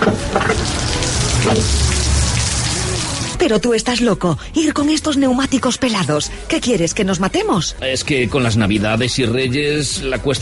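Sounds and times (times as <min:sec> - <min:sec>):
heavy rain pouring: 0:00.0 - 0:03.5
speech: 0:00.4 - 0:00.6, 0:01.4 - 0:01.8, 0:03.4 - 0:10.4.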